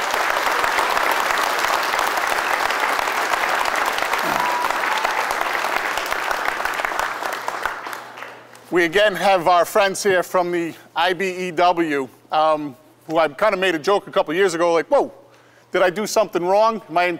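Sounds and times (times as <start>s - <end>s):
large crowd applauding: 0.0s - 8.5s
speech: 8.7s - 17.1s.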